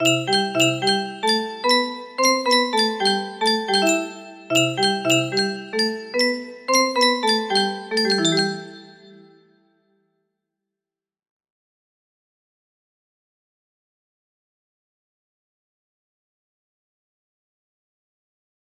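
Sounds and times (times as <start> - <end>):
lullaby music box melody: 0.0 - 9.3.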